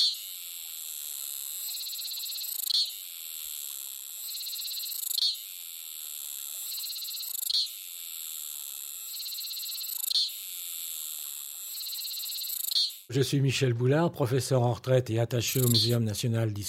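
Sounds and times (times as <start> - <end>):
Tana ventriroseus cicada singing: 0.0 - 13.1, 15.5 - 16.0
speech: 13.2 - 16.6.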